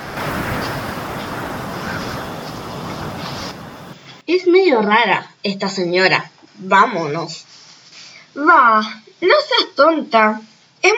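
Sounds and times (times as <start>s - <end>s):
strong wind roaring: 0.0s - 4.0s
speech: 4.3s - 7.5s, 8.4s - 10.9s.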